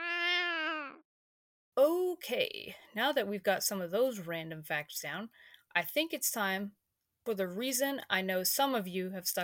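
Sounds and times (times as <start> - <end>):
cat meowing: 0.0 - 1.0
speech: 1.8 - 9.4.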